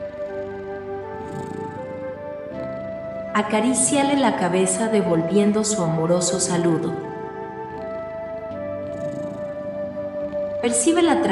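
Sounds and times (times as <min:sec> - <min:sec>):
low steady cat purr: 0:00.0 - 0:11.3
sustained tonal musical drone: 0:00.0 - 0:11.3
speech: 0:03.4 - 0:07.1, 0:10.6 - 0:11.3.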